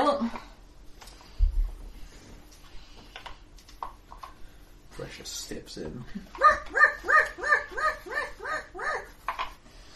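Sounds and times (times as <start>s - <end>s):
speech: 5.2s - 7.5s
person imitating dog barks: 6.4s - 9.1s.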